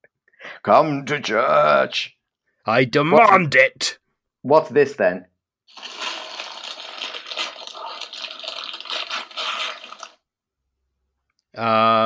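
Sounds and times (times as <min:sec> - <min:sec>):
speech: 0:00.6 - 0:06.0, 0:11.6 - 0:12.0
paper crinkling and tearing as a present is unwrapped: 0:05.7 - 0:10.2.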